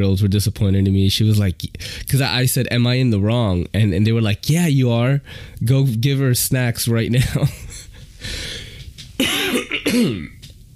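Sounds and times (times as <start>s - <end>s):
speech: 0.0s - 8.5s, 9.2s - 10.4s
person clearing phlegm from throat while recovering from a cold: 9.2s - 10.4s.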